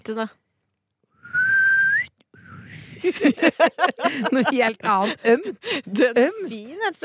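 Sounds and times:
speech: 0.0 - 0.4, 3.0 - 7.0
person whistling an ironic catcall: 1.2 - 2.8
laughter: 3.0 - 7.0.

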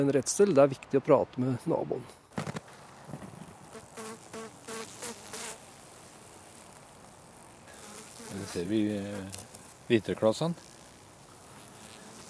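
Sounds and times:
speech: 0.0 - 2.2, 8.6 - 10.7
steady outdoor hiss: 0.0 - 12.2
honeybees buzzing around beehives: 3.4 - 12.2.

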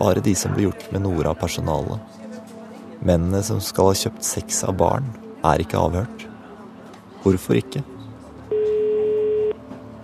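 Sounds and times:
speech: 0.0 - 2.2, 3.0 - 6.2, 7.2 - 7.9
telephone ringing tone of a call placed to a police lawyer: 8.5 - 9.6.

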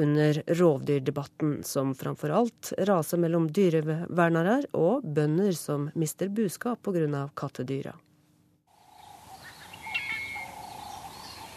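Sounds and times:
speech: 0.0 - 8.1
soft ambient hum: 0.0 - 11.5
birds chirping in Hwange National Park Zimbabwe in the early morning: 8.8 - 11.5.

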